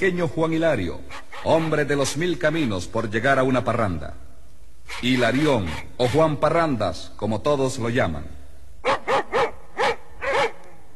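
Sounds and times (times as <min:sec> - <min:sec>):
speech: 0:00.0 - 0:04.2, 0:04.9 - 0:09.0
dogs barking at night: 0:08.8 - 0:10.7.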